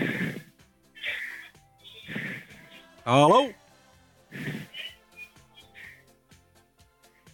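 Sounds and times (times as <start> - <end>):
heavy rhythmic breathing of a caller over a phone line: 0.0 - 2.9, 4.3 - 6.1
caller speaking a short greeting over a phone line: 3.0 - 3.6
speech: 3.1 - 3.6.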